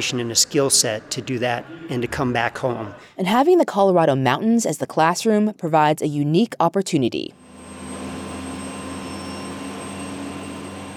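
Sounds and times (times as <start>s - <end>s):
speech: 0.0s - 7.4s
Black Hawk helicopter roar heard from inside the cabin over Colorado mountains: 7.4s - 10.9s.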